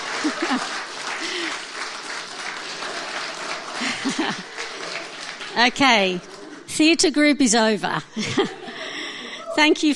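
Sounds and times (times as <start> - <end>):
laughter: 0.0 - 5.4, 8.1 - 9.9
audience applause: 0.0 - 6.7
speech: 0.2 - 0.8, 5.6 - 8.6, 9.6 - 9.9.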